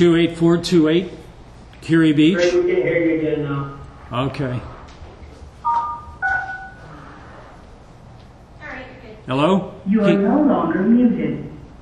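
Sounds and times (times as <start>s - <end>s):
speech: 0.0s - 1.2s, 1.8s - 4.8s, 9.3s - 11.5s
telephone keypad tones pressing star and six to unmute: 5.6s - 6.9s.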